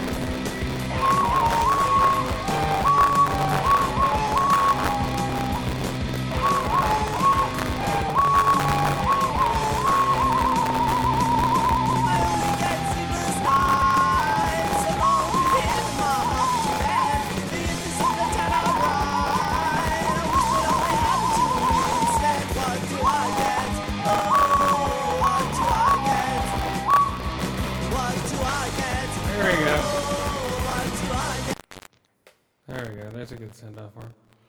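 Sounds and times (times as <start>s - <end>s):
bright desk whistle playing a wavering sliding melody: 0.0s - 31.5s
dense busy musical backing: 0.0s - 31.6s.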